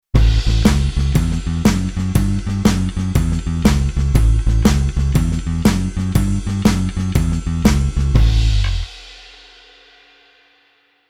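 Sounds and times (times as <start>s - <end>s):
bass playing blues: 0.2s - 8.9s.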